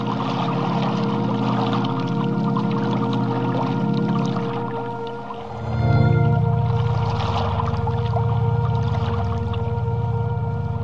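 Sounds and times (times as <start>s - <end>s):
low sustained tonal hum: 0.0s - 10.8s
rushing water lapping and churning: 0.0s - 10.8s.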